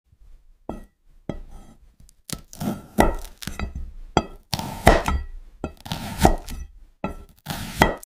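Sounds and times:
cleaver: 1.4s - 8.0s.

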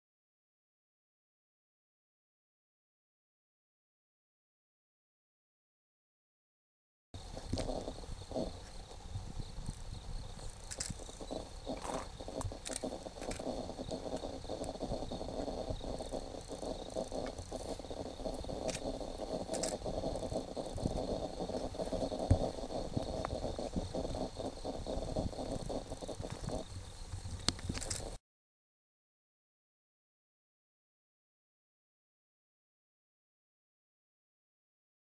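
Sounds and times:
Sykes's nightjar bird calling: 7.2s - 28.2s.

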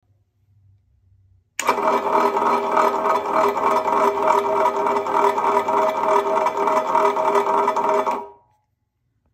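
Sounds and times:
iron rolling mill rolling: 1.6s - 8.4s.

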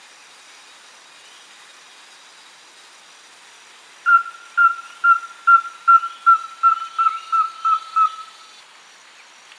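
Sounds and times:
rusty-belted tapaculo calling with pure whistles: 4.1s - 8.5s.

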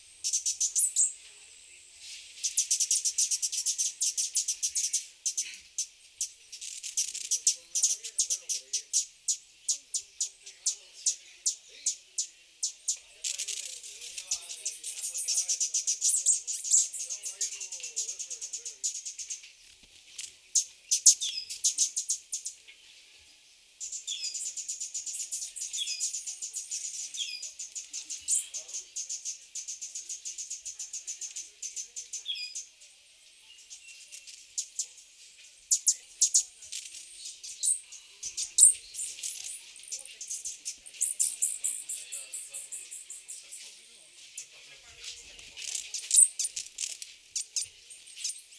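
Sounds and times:
Cuban emerald: 0.0s - 48.5s.

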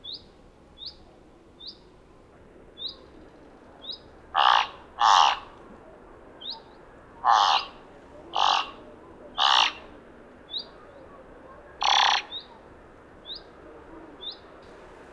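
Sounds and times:
thick-billed raven harsh throaty calls: 3.9s - 5.6s, 6.4s - 12.7s.

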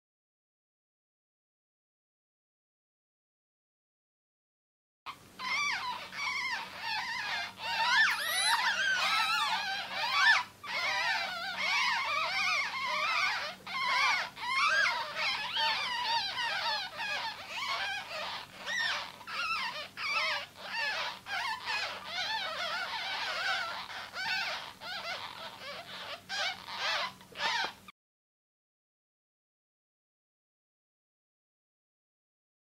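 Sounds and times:
ferret: 5.1s - 27.9s.

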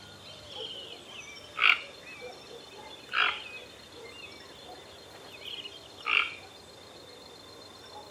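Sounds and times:
Toco toucan Ramphastos toco croaking: 3.1s - 3.4s.

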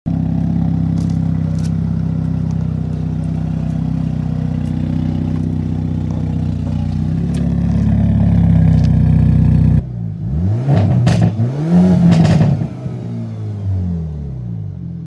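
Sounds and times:
Hyundai Elantra exhaust: 0.1s - 15.0s.

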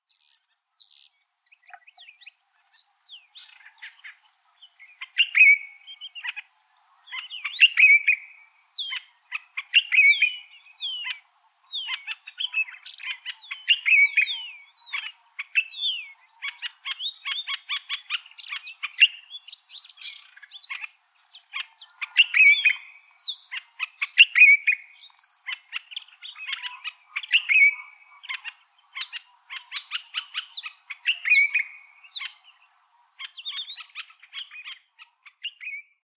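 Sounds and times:
African red eyed bulbul calling: 0.1s - 35.8s.

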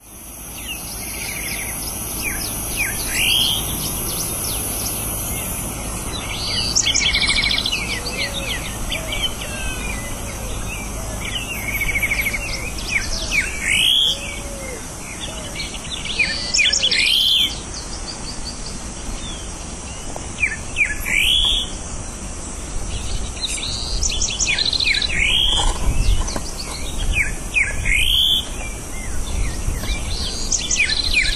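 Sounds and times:
Greyish saltator call: 0.5s - 18.6s, 20.4s - 21.8s, 23.4s - 31.3s.

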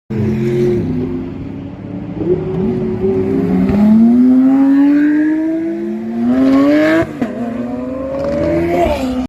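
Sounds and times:
Lamborghini Aventador engine: 0.1s - 9.2s.

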